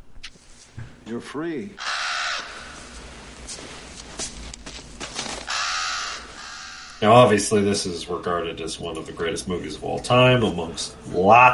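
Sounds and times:
speech: 1.1s - 1.9s, 7.0s - 11.5s
birds calling with harsh caw-like cries: 1.8s - 3.0s, 5.2s - 7.4s
rustling and clattering noise: 2.8s - 6.5s.

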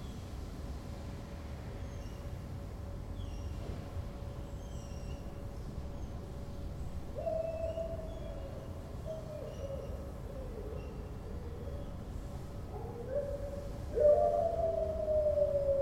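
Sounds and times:
low traffic-like rumble: 0.0s - 15.8s
dog howling on a patio: 7.2s - 11.9s, 12.7s - 15.8s.

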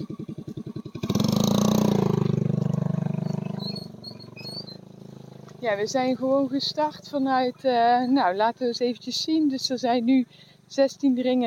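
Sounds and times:
scooter engine idling and revving as it passes: 0.0s - 8.1s
speech: 5.6s - 11.4s.

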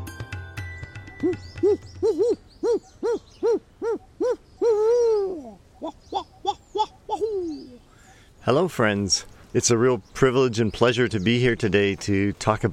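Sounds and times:
owl hooting: 1.1s - 8.3s
speech: 1.2s - 1.9s, 8.5s - 12.7s.

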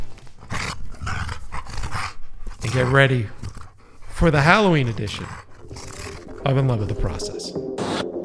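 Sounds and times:
small dog growling: 0.4s - 7.0s
speech: 2.7s - 3.5s, 4.2s - 5.4s, 6.4s - 8.1s.

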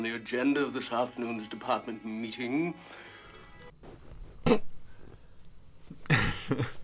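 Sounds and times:
speech: 0.2s - 3.1s, 6.5s - 6.8s
man clearing his throat: 3.3s - 6.8s.

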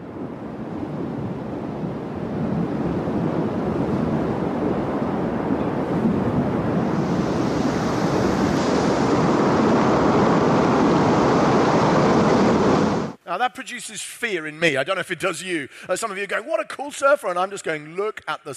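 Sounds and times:
huge ocean waves surging and crashing: 0.0s - 13.2s
speech: 13.4s - 18.5s.

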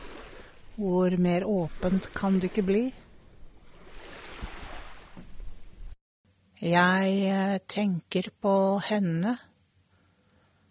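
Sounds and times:
sea waves washing against the shore: 0.0s - 6.0s
speech: 0.8s - 3.0s, 6.6s - 9.5s.

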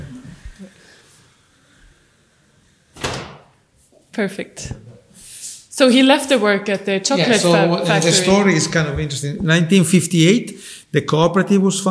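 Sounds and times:
door swinging shut with a solid thud: 2.9s - 3.6s
speech: 4.2s - 4.9s, 5.8s - 11.8s.

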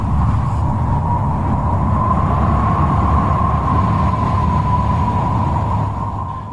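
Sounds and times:
strong hot wind roaring with a thin whistling tone: 0.0s - 6.5s.

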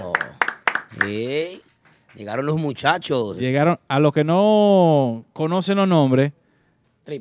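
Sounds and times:
sparse hand claps: 0.0s - 2.4s
speech: 1.0s - 6.4s.

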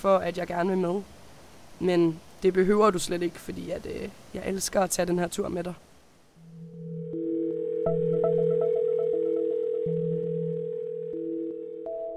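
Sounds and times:
speech: 0.0s - 1.2s, 1.8s - 5.9s
phone electronic ringtone for an incoming call: 6.4s - 12.1s.

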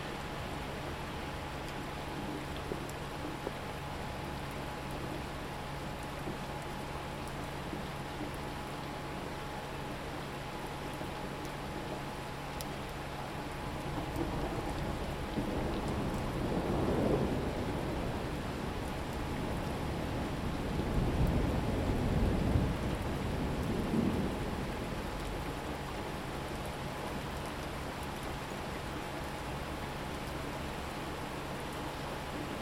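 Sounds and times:
steady rain hiss in a storm: 0.0s - 32.5s
low rolling thunder rumble: 14.6s - 25.0s.

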